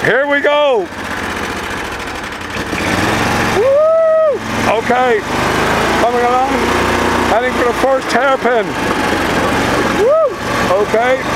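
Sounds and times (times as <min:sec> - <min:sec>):
speech: 0:00.0 - 0:01.1, 0:04.7 - 0:11.3
620 cc off-road buggy engine starting and revving: 0:00.0 - 0:11.3.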